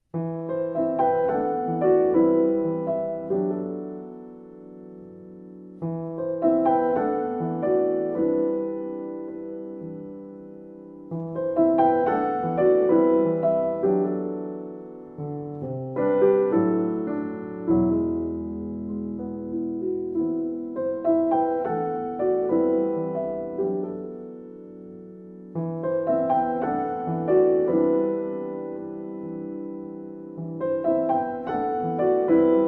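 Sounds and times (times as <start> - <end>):
solo piano piece: 0.0 - 32.6.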